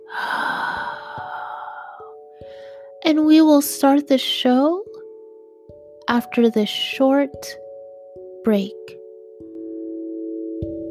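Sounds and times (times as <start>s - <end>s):
deep breath in and out: 0.0s - 3.0s
speech: 3.1s - 4.8s, 6.1s - 7.6s, 8.4s - 9.0s.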